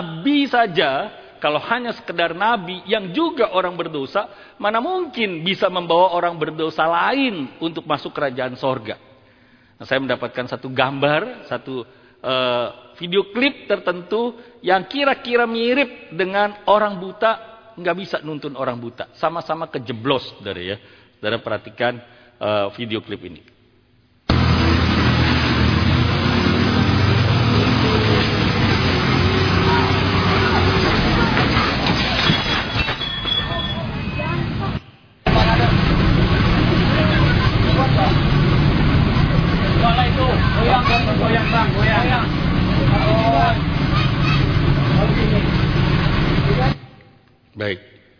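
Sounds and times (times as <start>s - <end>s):
speech: 0.2s - 9.1s, 9.8s - 23.5s
clanks and creaks of heavy machinery: 24.3s - 46.8s
forklift engine rumbling under strain lifting a truck: 24.3s - 46.8s
voices: 33.5s - 46.8s.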